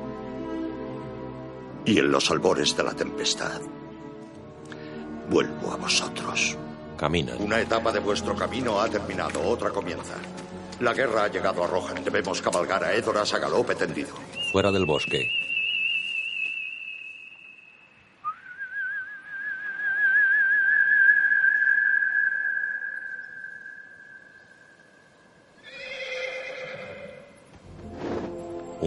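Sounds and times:
speech: 0:01.8 - 0:03.8, 0:05.3 - 0:15.4
long whistle calling a horse: 0:14.4 - 0:25.3
horse whinnying: 0:25.6 - 0:27.4.

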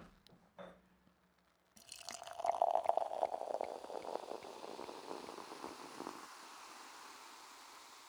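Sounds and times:
sparkling drink poured into a glass: 0:01.8 - 0:08.0.

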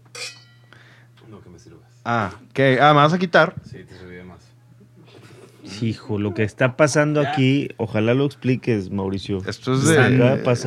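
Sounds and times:
low steady hum: 0:00.0 - 0:10.6
wine glasses clinking: 0:00.1 - 0:00.7
speech: 0:01.3 - 0:04.5, 0:05.6 - 0:10.6.

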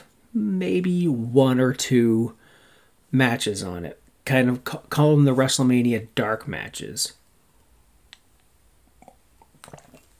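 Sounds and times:
speech: 0:00.3 - 0:02.4, 0:03.1 - 0:07.2
sipping peppermint tea from a mug: 0:09.0 - 0:10.1
slurp and swallow of peppermint tea: 0:09.0 - 0:10.1.

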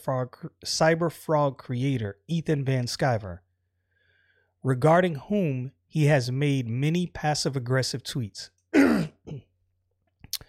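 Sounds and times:
speech: 0:00.0 - 0:03.4, 0:04.6 - 0:09.5
harsh COVID cough: 0:08.8 - 0:09.6
throat clearing: 0:08.8 - 0:09.6.

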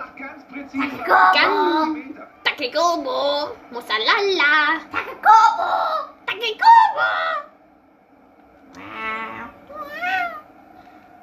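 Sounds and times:
speech: 0:00.7 - 0:07.4
cat meowing: 0:08.8 - 0:10.5.

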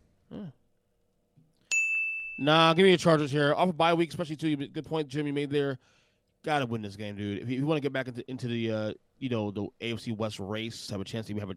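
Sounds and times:
brief vocal utterance: 0:00.3 - 0:00.6
bright bell ding: 0:01.7 - 0:02.8
speech: 0:02.4 - 0:11.5.

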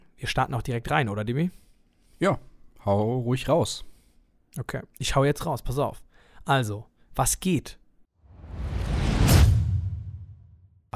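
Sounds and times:
speech: 0:00.2 - 0:01.6, 0:02.2 - 0:03.9, 0:04.5 - 0:07.8
transition whoosh: 0:08.2 - 0:10.7.

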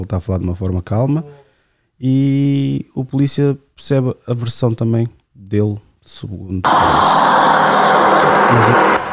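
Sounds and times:
speech: 0:00.0 - 0:01.4, 0:02.0 - 0:07.2, 0:08.5 - 0:09.0
road traffic roar: 0:06.7 - 0:09.1.

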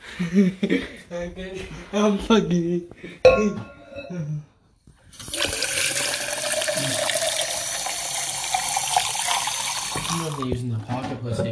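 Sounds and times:
laughter: 0:00.0 - 0:01.1
speech: 0:00.2 - 0:04.5, 0:10.1 - 0:11.4
tap water filling a container: 0:05.1 - 0:10.5.

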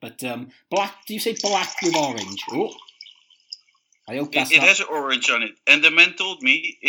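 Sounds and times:
speech: 0:00.1 - 0:02.9, 0:04.1 - 0:06.8
soft drink pouring with fizzy hiss: 0:00.7 - 0:05.3.

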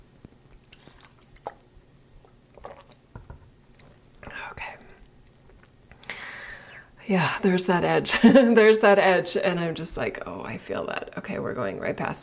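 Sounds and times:
person drinking water: 0:00.4 - 0:06.8
gulps and swallows: 0:00.5 - 0:06.1
speech: 0:07.1 - 0:12.2.

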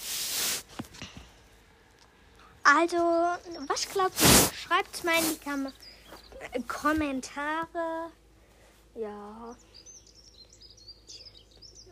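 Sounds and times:
steady low hum: 0:00.1 - 0:11.9
speech: 0:02.7 - 0:05.8, 0:06.5 - 0:08.2, 0:09.0 - 0:09.7
bird chirping in rapid high-pitched bursts: 0:03.1 - 0:06.6, 0:09.4 - 0:11.9.

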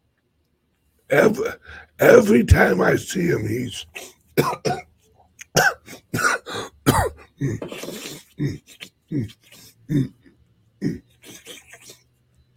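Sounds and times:
speech: 0:01.1 - 0:04.9, 0:06.9 - 0:10.2, 0:10.8 - 0:11.6
voice imitating nose sniffing: 0:07.7 - 0:10.2, 0:10.8 - 0:12.2.

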